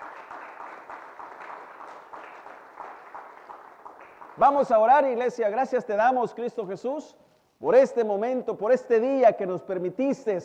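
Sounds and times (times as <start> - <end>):
audience applauding: 0.0 - 4.9
speech: 4.4 - 10.4.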